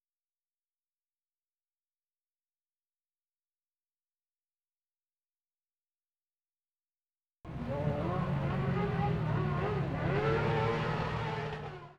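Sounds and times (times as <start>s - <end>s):
engine revving high: 7.5s - 11.9s.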